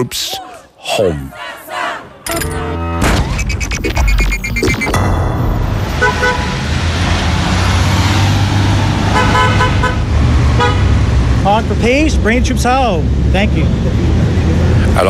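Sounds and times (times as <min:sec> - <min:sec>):
speech: 0:00.0 - 0:01.4, 0:02.3 - 0:02.8, 0:03.8 - 0:05.1, 0:11.4 - 0:14.2
steady street traffic noise in a town: 0:00.0 - 0:15.0
short car horn toots in a town street: 0:05.9 - 0:06.7, 0:09.1 - 0:11.0.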